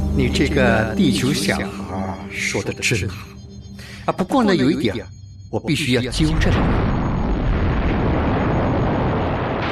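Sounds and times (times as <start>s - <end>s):
speech: 0.2s - 3.4s, 4.1s - 6.8s
deep continuous rumbling boom: 6.3s - 9.7s.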